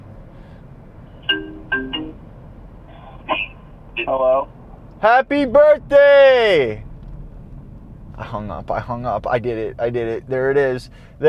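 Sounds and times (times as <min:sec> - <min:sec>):
mobile phone short electronic ringtone melody during an outgoing call: 0:01.2 - 0:02.2
speech: 0:04.0 - 0:06.8, 0:08.2 - 0:11.2.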